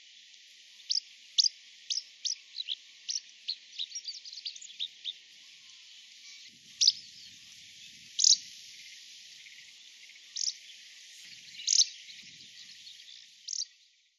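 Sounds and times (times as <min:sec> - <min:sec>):
Eurasian Skylark calling: 0:00.9 - 0:05.1, 0:06.2 - 0:08.6, 0:09.4 - 0:10.7, 0:11.3 - 0:13.8.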